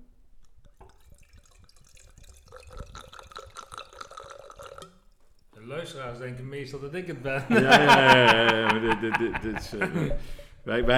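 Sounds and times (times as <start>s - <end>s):
liquid slurping and gurgling: 0.6s - 5.4s
speech: 5.7s - 10.9s
laughter: 7.2s - 10.3s.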